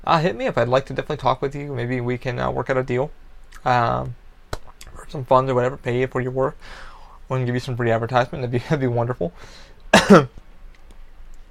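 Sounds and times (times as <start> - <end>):
speech: 0.0 - 4.2, 5.0 - 10.4
person coughing: 9.9 - 10.4.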